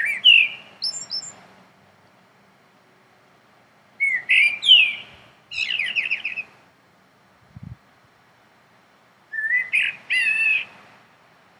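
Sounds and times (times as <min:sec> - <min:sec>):
common blackbird giving fluty warbles and squeaky twitters: 0:00.0 - 0:01.4, 0:04.0 - 0:06.6, 0:09.3 - 0:10.8.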